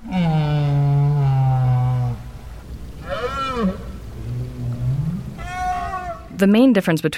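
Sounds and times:
right whale calls recorded underwater in the Bay of Fundy: 0:00.0 - 0:02.4, 0:03.0 - 0:06.4
speech: 0:06.4 - 0:07.1.

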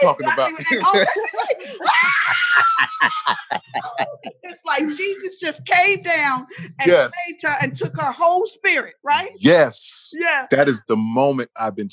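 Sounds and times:
choppy voices and laughter: 0:00.0 - 0:08.4
speech: 0:00.0 - 0:11.9
woman's ecstatic scream in live concert recording: 0:01.6 - 0:03.0.

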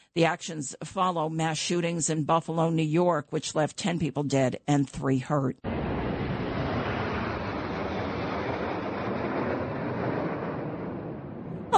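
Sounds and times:
speech: 0:00.2 - 0:05.8
loud sustained roar of military aircraft flying past: 0:05.7 - 0:11.7.

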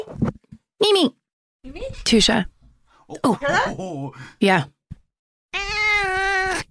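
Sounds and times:
speech: 0:00.1 - 0:02.5, 0:03.1 - 0:04.8
cat meowing loudly: 0:05.6 - 0:06.6.

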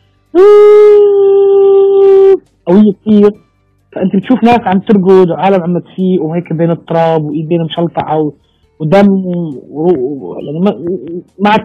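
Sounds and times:
speech: 0:00.3 - 0:00.7, 0:02.7 - 0:11.6
person humming a high tone imitating ear ringing: 0:00.4 - 0:02.4.

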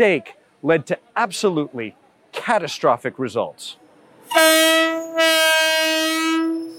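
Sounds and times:
speech: 0:00.0 - 0:04.9
train moving through on railroad tracks: 0:03.8 - 0:06.7
passing train horn blasts: 0:04.3 - 0:06.7.

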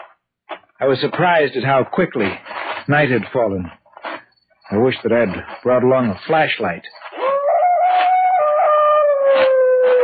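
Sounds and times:
speech: 0:00.8 - 0:03.8, 0:04.7 - 0:07.0
dog howling from across a lake at night: 0:07.2 - 0:10.0.

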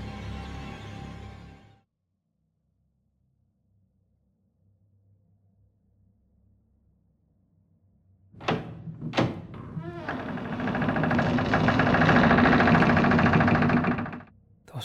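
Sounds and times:
door thuds: 0:08.4 - 0:14.2
long loud grinding rumble: 0:08.4 - 0:14.3.

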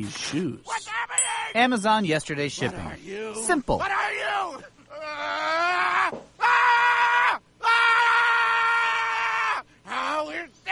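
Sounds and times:
speech: 0:00.0 - 0:00.7, 0:01.5 - 0:04.8
person screaming in a comedy sketch: 0:03.8 - 0:10.2.

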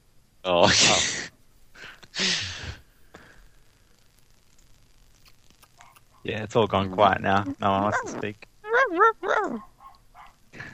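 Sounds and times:
noisy burst: 0:00.5 - 0:05.6
pet dog yelping: 0:05.7 - 0:06.3, 0:08.8 - 0:10.4
pet dog barking at home: 0:05.8 - 0:06.3, 0:09.4 - 0:10.4
speech: 0:06.2 - 0:09.7.

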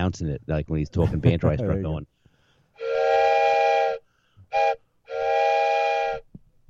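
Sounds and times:
speech: 0:00.1 - 0:02.2
laughter: 0:01.0 - 0:02.0
steam train whistle: 0:02.8 - 0:06.3.

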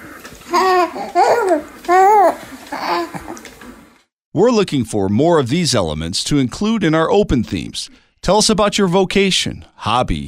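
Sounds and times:
baby babbling with sing-song coos: 0:00.5 - 0:03.4
speech: 0:04.4 - 0:10.2.

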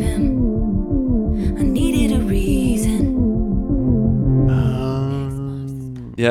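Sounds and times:
throbbing drum beat: 0:00.0 - 0:04.9
sustained wailing tones: 0:00.0 - 0:06.2.

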